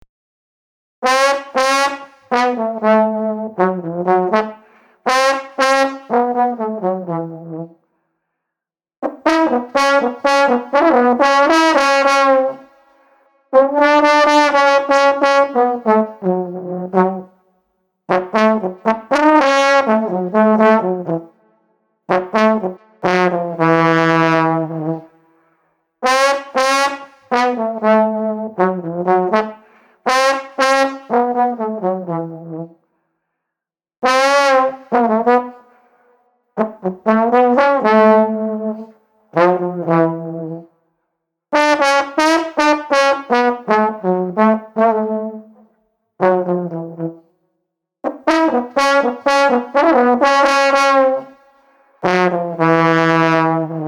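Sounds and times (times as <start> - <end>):
street trombone playing groovy music: 1.0 - 7.7, 9.0 - 12.6, 13.6 - 17.3, 18.1 - 21.3, 22.1 - 25.0, 26.0 - 32.7, 34.0 - 35.6, 36.6 - 40.6, 41.6 - 45.6, 46.2 - 47.2, 48.1 - 51.4, 52.0 - 53.8.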